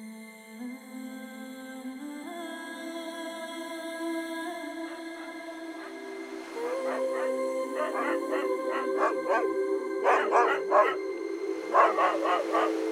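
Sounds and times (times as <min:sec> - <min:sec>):
dog howling: 0:04.8 - 0:11.0, 0:11.6 - 0:12.9
dog barking in quick bursts of yips: 0:06.6 - 0:11.0, 0:11.7 - 0:12.9.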